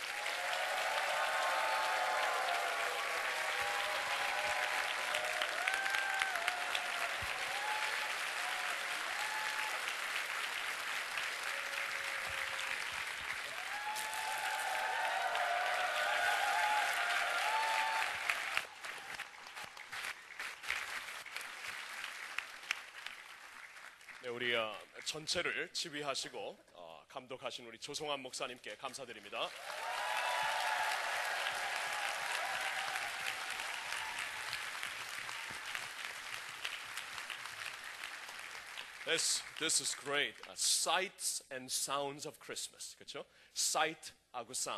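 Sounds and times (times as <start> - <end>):
audience applause for orchestras after a Christmas production: 0.0 - 24.2, 29.4 - 40.5
audience whoops: 0.1 - 9.9, 13.4 - 19.2, 29.6 - 35.9
speech: 24.3 - 29.8, 39.1 - 44.7.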